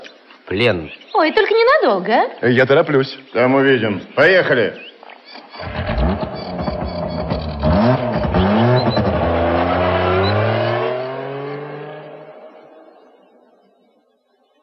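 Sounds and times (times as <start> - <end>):
speech: 0.5 - 4.9
motorcycle engine revving and shifting gears: 5.6 - 13.6.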